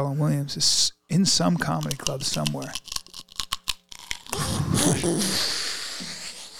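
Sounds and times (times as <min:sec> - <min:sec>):
speech: 0:00.0 - 0:03.0, 0:04.4 - 0:05.6
crunchy chewing: 0:01.8 - 0:04.9.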